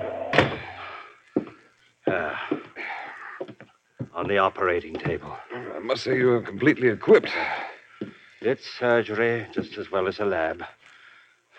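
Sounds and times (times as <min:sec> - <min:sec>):
door kicked shut: 0:00.0 - 0:00.9
speech: 0:04.2 - 0:07.6, 0:08.4 - 0:10.8.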